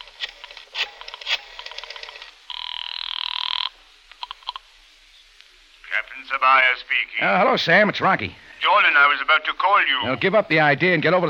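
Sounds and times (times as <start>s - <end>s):
telephone ringing on the line from a phone booth: 0.0s - 4.6s
speech: 6.2s - 11.2s.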